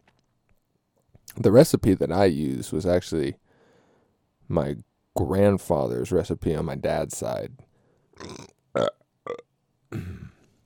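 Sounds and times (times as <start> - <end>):
speech: 1.4 - 3.4, 4.5 - 9.0
loud throaty burps: 8.2 - 10.5.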